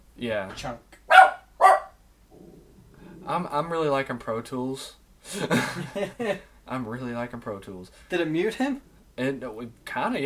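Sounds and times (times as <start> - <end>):
speech: 0.2 - 1.0, 3.2 - 10.2
dog barking and howling: 1.1 - 2.0.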